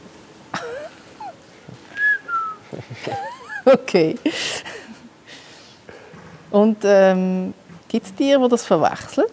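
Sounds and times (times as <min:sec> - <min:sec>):
laughter: 0:00.6 - 0:01.4, 0:02.3 - 0:05.1
person whistling short notes to call guinea fowl: 0:02.0 - 0:02.7
speech: 0:02.7 - 0:04.7, 0:06.5 - 0:09.3.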